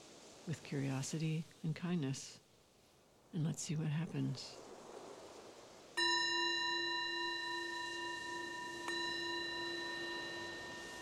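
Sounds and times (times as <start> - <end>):
speech: 0.4 - 2.4, 3.3 - 4.7
meditation bell struck and ringing: 6.0 - 11.0.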